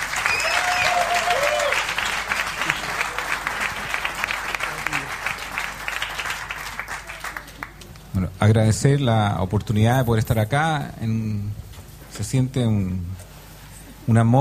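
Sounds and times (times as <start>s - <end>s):
audience applause: 0.0s - 7.9s
speech: 8.4s - 11.6s, 12.2s - 13.2s, 14.1s - 14.3s.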